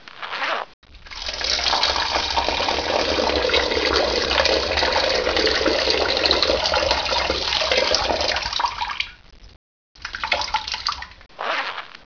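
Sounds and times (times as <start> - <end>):
person urinating: 0.9 - 9.2, 10.0 - 11.6.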